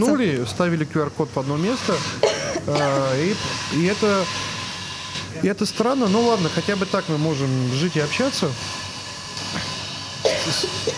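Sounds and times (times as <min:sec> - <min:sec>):
speech: 0:00.0 - 0:04.6, 0:05.3 - 0:08.8, 0:10.4 - 0:10.9
person coughing in short harsh bursts: 0:02.2 - 0:03.1, 0:10.2 - 0:10.9.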